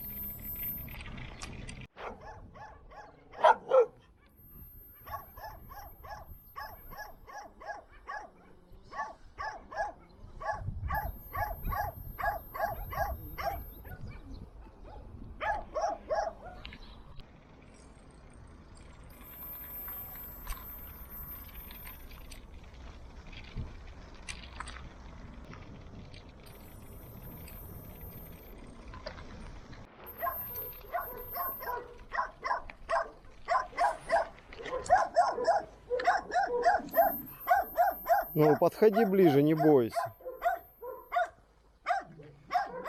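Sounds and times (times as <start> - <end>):
dogs barking at a battery-powered device: 2.0 - 4.2, 5.0 - 16.7, 30.1 - 42.8
speech: 38.4 - 40.2.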